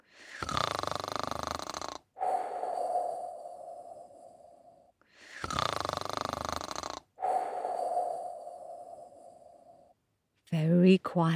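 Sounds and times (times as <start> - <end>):
voice imitating a crocodile snoring loudly: 0.1 - 4.5, 5.2 - 9.8
speech: 11.0 - 11.3.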